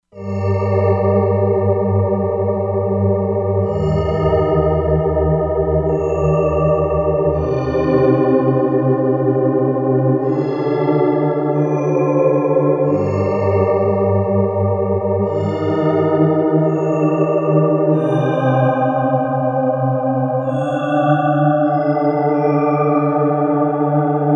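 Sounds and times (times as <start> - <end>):
synthesizer: 0.2 - 24.3.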